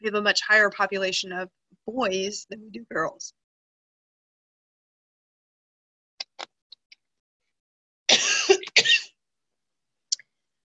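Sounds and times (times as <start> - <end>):
speech: 0.0 - 3.4
harsh coughing: 8.1 - 9.1.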